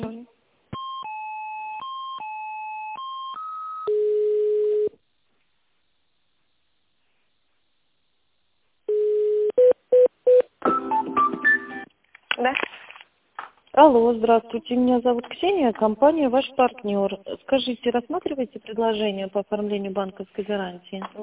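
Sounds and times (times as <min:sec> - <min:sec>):
telephone line tones while a call is transferred to a technical department: 0:00.8 - 0:04.9, 0:08.9 - 0:11.2
speech: 0:13.8 - 0:21.2.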